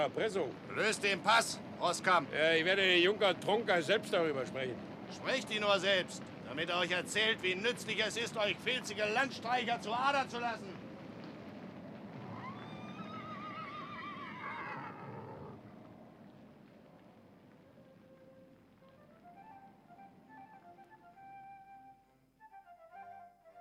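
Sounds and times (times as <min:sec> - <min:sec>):
speech: 0:00.0 - 0:10.8
horses neighing: 0:12.2 - 0:15.6.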